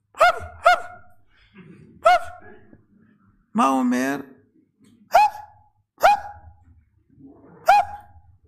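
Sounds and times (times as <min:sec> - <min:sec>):
person imitating a dog begging for food with woofs: 0:00.1 - 0:01.1, 0:02.0 - 0:02.5, 0:05.1 - 0:06.6, 0:07.5 - 0:08.2
speech: 0:03.6 - 0:04.3.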